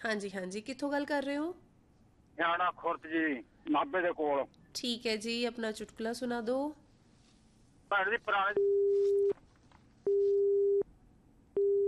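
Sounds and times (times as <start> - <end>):
speech: 0.0 - 1.7, 2.4 - 6.8, 7.9 - 9.3
telephone busy tone on a phone line cut by a storm: 10.1 - 10.8, 11.6 - 11.8.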